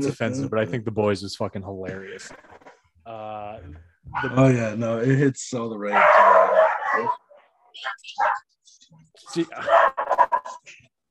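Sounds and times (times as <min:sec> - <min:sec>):
speech: 0:00.0 - 0:06.4, 0:07.0 - 0:07.2, 0:07.8 - 0:08.5, 0:09.2 - 0:10.8
dogs barking: 0:04.1 - 0:04.5, 0:05.8 - 0:08.5, 0:09.2 - 0:10.7.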